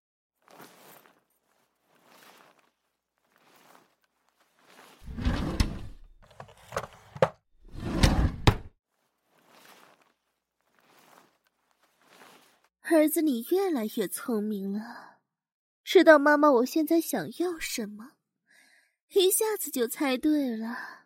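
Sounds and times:
soft footsteps: 0.4s - 7.4s, 8.9s - 12.7s
drawer being pulled open and rummaged through: 5.0s - 8.7s
speech: 12.9s - 15.1s, 15.9s - 18.2s, 19.1s - 21.0s.

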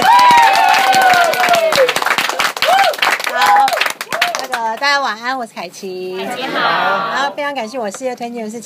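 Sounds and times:
raised voices and whoops: 0.0s - 2.0s, 2.6s - 4.4s
crowd clapping to welcome a lecturer: 0.0s - 4.9s
speech: 4.9s - 8.6s.

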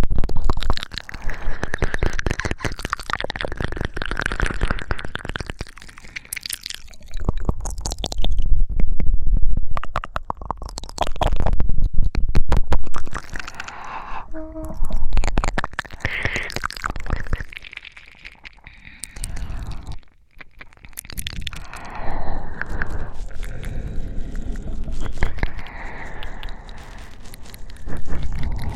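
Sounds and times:
wet mouth sounds and sucking noises: 0.0s - 28.7s
heavy breathy exhales: 13.3s - 14.9s, 18.6s - 20.1s, 21.5s - 28.7s.

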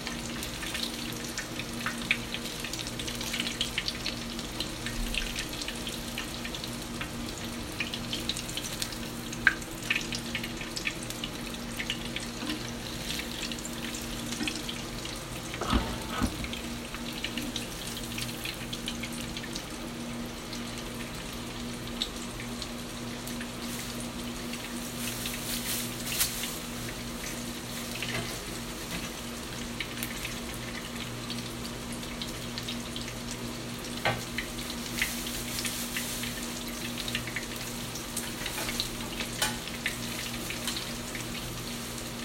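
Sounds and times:
ground meat cutlets frying in hot oil: 0.0s - 42.2s
scrapes: 15.6s - 16.6s.

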